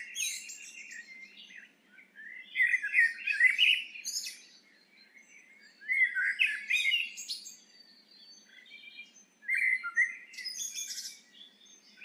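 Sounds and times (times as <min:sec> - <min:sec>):
Eurasian blackbird song, Turdus merula: 0:00.0 - 0:12.0.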